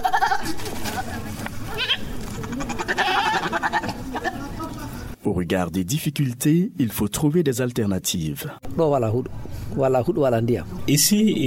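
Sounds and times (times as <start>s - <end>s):
goats bleating in front of a yard in Burkina Faso: 0.0s - 1.1s, 1.7s - 4.6s
speech: 5.4s - 11.4s.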